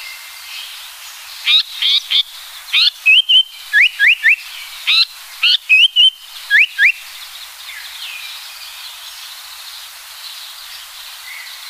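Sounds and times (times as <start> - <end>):
Japanese paradise flycatcher singing: 1.4 - 7.2.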